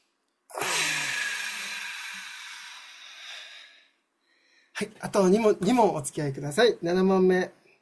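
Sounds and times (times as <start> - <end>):
long deep breath drawn and let out as a relaxation pause: 0.5 - 4.8
speech: 4.8 - 7.6.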